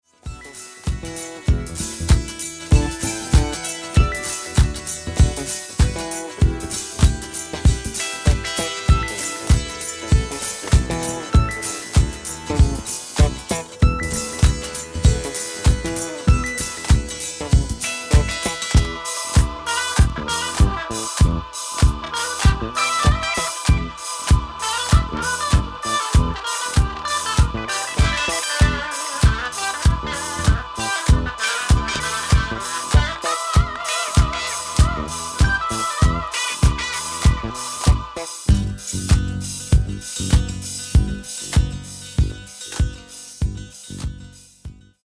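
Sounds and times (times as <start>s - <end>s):
funky bass: 0.3s - 45.0s.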